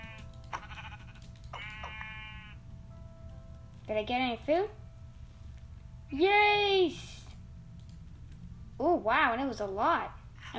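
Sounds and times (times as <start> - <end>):
video game sheep bleating: 0.0 - 2.6
low steady hum: 0.0 - 10.5
speech: 3.9 - 4.8, 6.1 - 7.1, 8.8 - 10.5.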